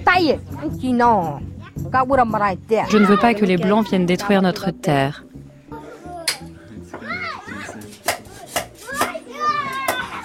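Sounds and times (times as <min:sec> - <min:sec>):
speech: 0:00.2 - 0:05.3
children playing with excited high voices: 0:02.8 - 0:04.2, 0:05.7 - 0:10.2.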